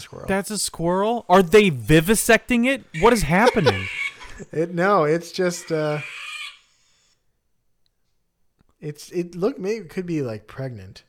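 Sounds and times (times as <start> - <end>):
speech: 0.0 - 6.2, 8.8 - 11.0
people laughing: 1.2 - 4.6
rooster crowing in the background: 3.0 - 4.4.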